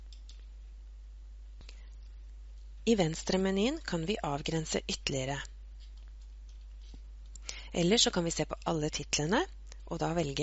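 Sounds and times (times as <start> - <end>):
computer mouse clicks selecting items in an online search menu: 0.0 - 0.5, 5.8 - 7.6
low steady hum: 0.0 - 10.4
speech: 2.9 - 5.5, 7.7 - 10.4.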